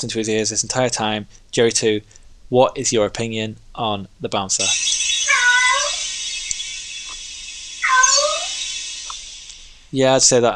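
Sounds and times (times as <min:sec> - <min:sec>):
speech: 0:00.0 - 0:05.1, 0:09.9 - 0:10.5
cat meowing: 0:05.2 - 0:06.0, 0:07.8 - 0:08.6.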